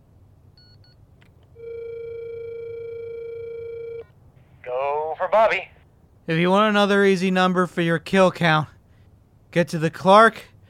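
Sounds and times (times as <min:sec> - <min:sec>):
faint hiss: 0:00.0 - 0:10.6
phone call ringing tone on speakerphone: 0:01.6 - 0:04.1
speech: 0:05.2 - 0:05.7, 0:06.3 - 0:08.7, 0:09.5 - 0:10.5.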